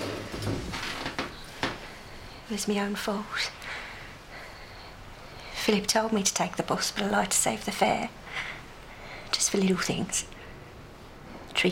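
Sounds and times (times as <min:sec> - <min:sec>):
chair pulled up across the floor: 0:00.0 - 0:01.8
speech: 0:02.5 - 0:03.8, 0:05.6 - 0:08.5, 0:09.4 - 0:10.3.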